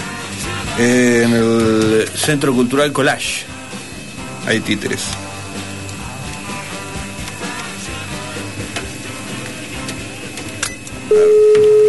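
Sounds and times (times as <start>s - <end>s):
speech: 0.8s - 3.6s, 4.4s - 5.2s
telephone line tone while a call is placed: 10.7s - 11.8s.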